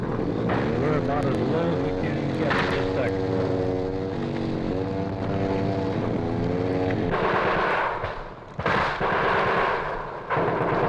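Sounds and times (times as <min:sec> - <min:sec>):
steady droning engine hum: 0:00.0 - 0:10.8
heavy enemy gunfire bursts during combat near a jungle landing zone: 0:07.1 - 0:10.8.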